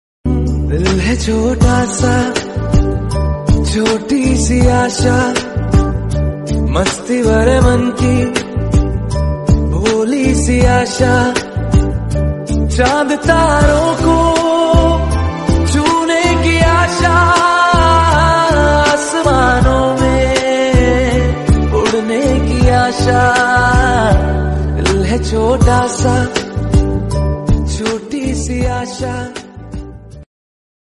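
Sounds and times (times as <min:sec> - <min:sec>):
Hindi song: 0:00.3 - 0:30.0.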